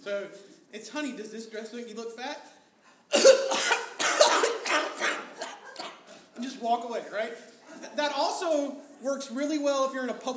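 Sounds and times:
speech: 0.0 - 3.4, 6.4 - 10.3
pretend choking coughs: 3.1 - 6.2.

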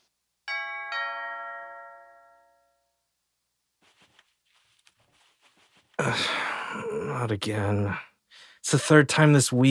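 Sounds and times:
two-tone doorbell chime: 0.5 - 3.0
soft rustling movement: 3.7 - 6.0
speech: 6.0 - 8.1, 8.7 - 9.6.

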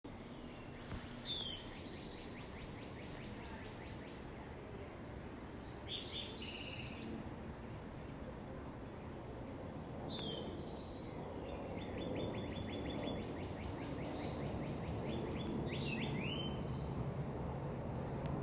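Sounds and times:
bird song with bright high chirps and a rapid trill: 0.1 - 4.3, 5.3 - 7.2, 10.1 - 17.2
steady low environmental noise: 0.1 - 18.4.

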